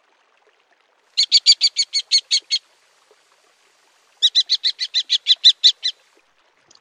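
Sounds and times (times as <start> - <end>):
common kestrel shrill kee-kee-kee calls: 1.2 - 2.6, 4.2 - 6.0.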